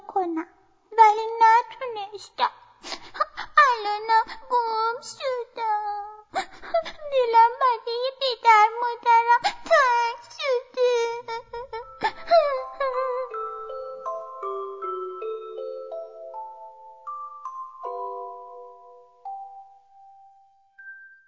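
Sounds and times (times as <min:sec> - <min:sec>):
speech: 0:00.2 - 0:10.6
cartoonish wailing cry in sliding, descending tones: 0:09.6 - 0:13.4.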